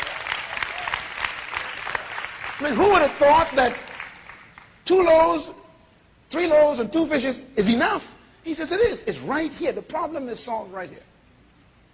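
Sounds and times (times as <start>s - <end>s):
audience clapping during a church sermon: 0.0s - 4.8s
speech: 2.6s - 3.9s, 4.9s - 5.6s, 6.3s - 11.1s.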